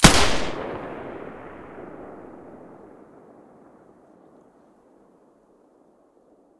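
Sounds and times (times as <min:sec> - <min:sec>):
G36 gun fired with silencer: 0:00.0 - 0:02.9.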